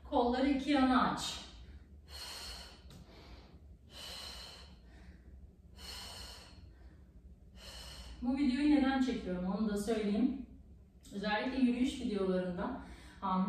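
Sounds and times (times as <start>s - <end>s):
speech: 0.2s - 1.4s, 8.2s - 10.5s, 11.1s - 13.4s
heavy rhythmic breathing in and out: 1.2s - 8.5s.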